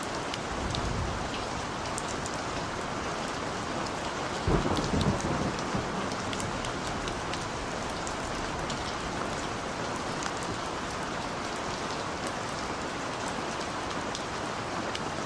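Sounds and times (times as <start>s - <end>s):
steady dense rainfall: 0.0s - 15.2s
low rumbling of thunder: 4.4s - 9.6s.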